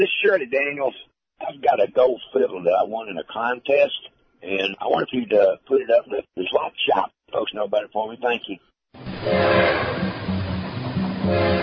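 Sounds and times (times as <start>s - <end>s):
speech: 0.0s - 10.1s
train horn chord blasts: 9.0s - 11.6s.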